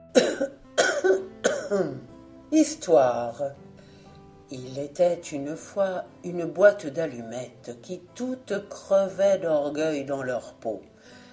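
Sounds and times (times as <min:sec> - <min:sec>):
man coughing: 0:00.2 - 0:02.0
speech: 0:01.8 - 0:03.6, 0:04.5 - 0:11.2.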